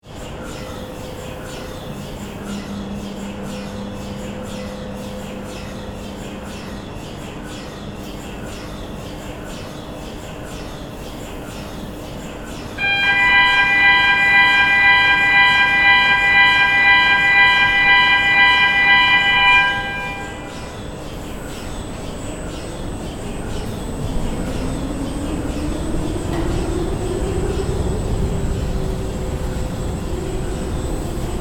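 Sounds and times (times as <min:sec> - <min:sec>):
observatory dome rotating at Paranal: 0:12.8 - 0:31.3.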